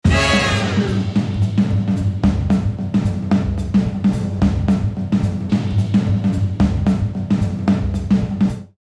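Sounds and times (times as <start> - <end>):
big band brass hit: 0.0 - 1.6
classic floor tom: 0.0 - 8.8
vintage big band swing drum loop from cassette: 0.0 - 8.8.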